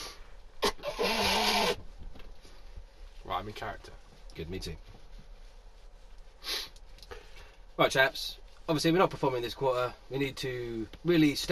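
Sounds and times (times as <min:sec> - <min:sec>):
short sniff-like burst: 0:00.0 - 0:00.2, 0:06.4 - 0:07.5
nose blowing with a honking rasp: 0:00.0 - 0:01.8, 0:06.4 - 0:06.8
speech: 0:03.4 - 0:05.0, 0:07.8 - 0:11.5.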